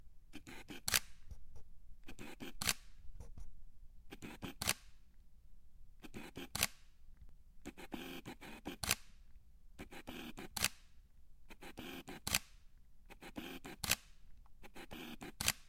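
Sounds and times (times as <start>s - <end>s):
Sony FE 50mm f 1.8 camera lens: 0.4s - 1.4s, 2.1s - 3.5s, 4.1s - 4.9s, 6.0s - 6.9s, 7.6s - 9.2s, 9.8s - 10.9s, 11.5s - 15.6s.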